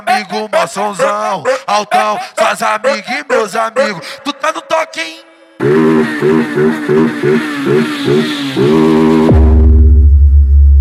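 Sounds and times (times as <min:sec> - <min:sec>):
speech: 0:00.0 - 0:09.2
motorcycle engine revving and rumbling: 0:05.6 - 0:10.0.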